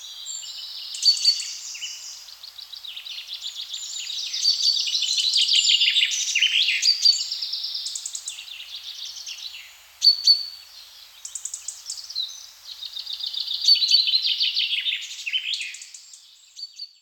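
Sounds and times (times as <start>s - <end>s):
birds singing in chorus: 0.0s - 17.0s.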